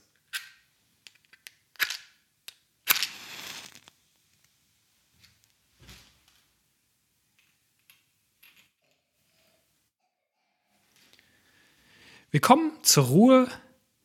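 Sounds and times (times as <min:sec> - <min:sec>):
match striking: 0:02.8 - 0:04.0
speech: 0:12.3 - 0:13.6.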